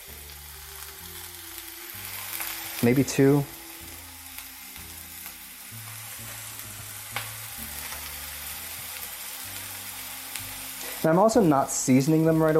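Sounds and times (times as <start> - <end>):
food searing in a hot pan: 0.0 - 12.5
speech: 2.8 - 3.6, 11.0 - 12.5.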